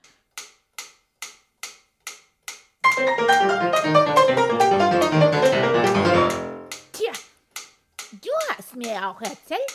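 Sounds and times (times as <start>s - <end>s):
fast metronome clicking: 0.3s - 9.7s
dense rapid piano playing of a sonata: 2.8s - 6.8s
speech: 8.8s - 9.7s.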